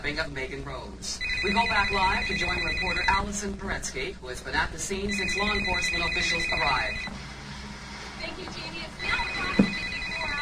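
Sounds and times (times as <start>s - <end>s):
speech: 0.0s - 7.2s
noisy background: 0.0s - 10.4s
telephone ringing: 1.2s - 3.3s, 5.0s - 7.1s, 8.8s - 10.4s.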